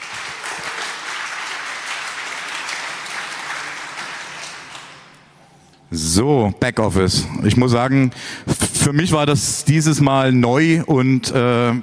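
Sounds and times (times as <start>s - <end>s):
sizable crowd applauding: 0.0s - 5.4s
speech: 5.9s - 11.8s.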